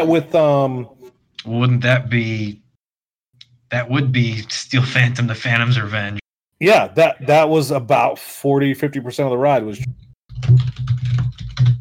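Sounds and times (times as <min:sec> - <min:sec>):
speech: 0:00.0 - 0:02.6, 0:03.7 - 0:10.9
loud typing on a computer keyboard: 0:10.3 - 0:11.7.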